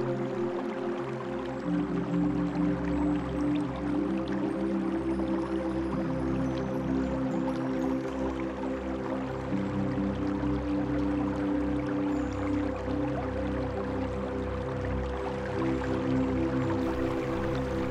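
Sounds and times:
water babbling along a stream: 0.0 - 17.8
low sustained drone hum: 16.8 - 17.8.

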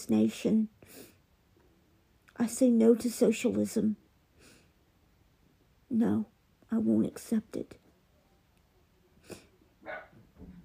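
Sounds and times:
speech: 0.0 - 1.1, 2.4 - 4.0, 5.9 - 7.8
faint breathy sounds: 9.1 - 9.7
dog barking in short sharp yaps: 9.8 - 10.2.

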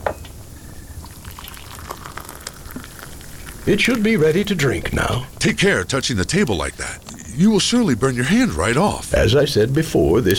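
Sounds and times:
water for tea simmering close to a boil: 0.4 - 10.3
tea leaves added to water: 0.9 - 5.6
speech: 3.6 - 10.3.

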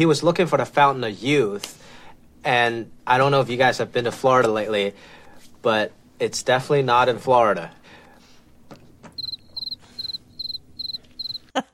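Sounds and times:
speech: 0.0 - 7.8, 11.6 - 11.7
cricket chirping in short pulsed trills: 9.2 - 11.4.

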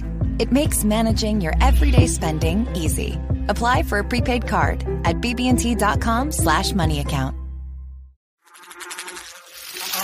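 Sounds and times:
speech: 0.4 - 7.4
flying insect buzzing: 8.4 - 10.0.

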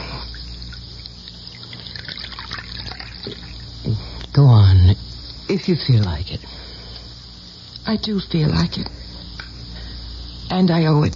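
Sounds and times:
coffee pouring into a cup: 0.7 - 3.7
speech: 5.6 - 6.6, 7.9 - 9.0, 10.5 - 11.1.

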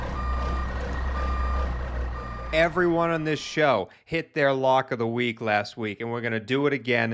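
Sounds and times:
armored truck low engine rumble: 0.0 - 3.6
armored truck reversing beeps: 0.0 - 3.7
speech: 2.5 - 7.1.

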